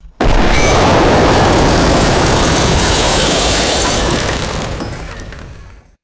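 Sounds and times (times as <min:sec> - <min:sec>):
debris settling: 0:00.0 - 0:06.0
heavy building collapse: 0:00.0 - 0:06.0.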